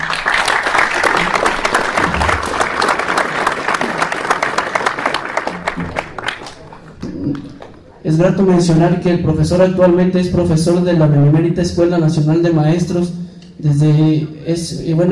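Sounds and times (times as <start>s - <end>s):
audience applause at a school anniversary conference welcoming a professor: 0.0s - 7.9s
speech: 8.1s - 15.1s.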